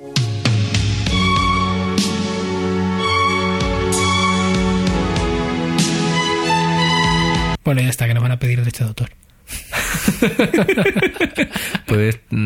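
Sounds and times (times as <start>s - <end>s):
upbeat instrumental tune from a dog-food advertisement: 0.0s - 7.6s
speech: 7.7s - 12.4s
laughter: 9.7s - 12.0s.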